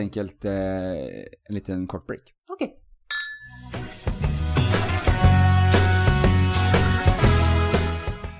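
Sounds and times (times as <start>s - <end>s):
speech: 0.0s - 2.8s
drinking glasses clinking in a toast: 3.1s - 3.7s
music: 3.5s - 8.3s.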